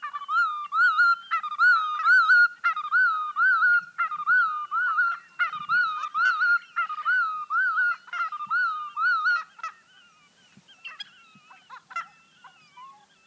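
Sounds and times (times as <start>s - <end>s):
willet calling at Emiquon, Illinois: 0.0s - 13.2s.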